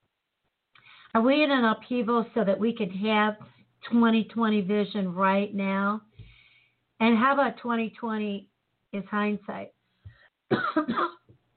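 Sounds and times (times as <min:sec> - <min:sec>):
speech: 0:01.2 - 0:06.1, 0:07.0 - 0:09.8, 0:10.5 - 0:11.2
person clearing throat: 0:10.5 - 0:11.3.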